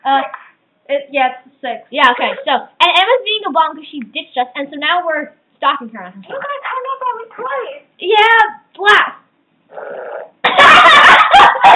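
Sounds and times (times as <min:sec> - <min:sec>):
speech: 0:00.0 - 0:11.7
fart: 0:09.7 - 0:10.4
laughter: 0:10.4 - 0:11.7.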